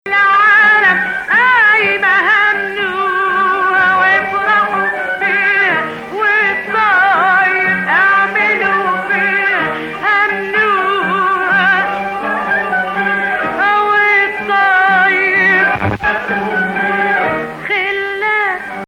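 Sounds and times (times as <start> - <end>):
Hijazkar Arabic music: 0.0 - 18.8.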